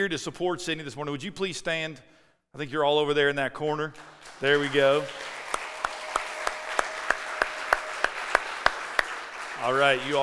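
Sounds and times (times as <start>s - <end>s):
speech: 0.0s - 5.6s, 9.6s - 10.2s
crowd clapping: 4.0s - 10.2s.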